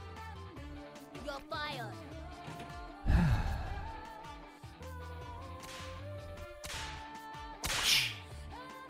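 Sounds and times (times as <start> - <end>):
speech: 1.3 - 2.1
whip crack effect from a pinball machine: 6.6 - 7.1, 7.6 - 8.3.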